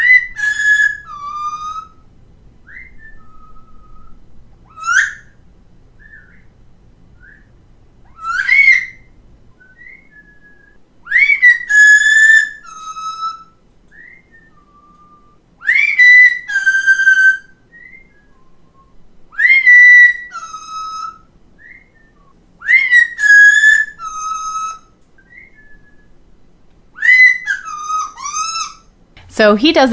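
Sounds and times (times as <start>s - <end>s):
pet parrot whistling: 0.0s - 5.4s, 6.0s - 6.5s, 7.2s - 26.2s, 26.9s - 28.9s
faint human whistle: 2.7s - 4.2s, 7.2s - 7.5s, 9.6s - 10.8s, 13.9s - 15.4s, 17.0s - 20.2s, 21.6s - 24.0s, 25.2s - 26.2s
speech: 29.4s - 29.9s.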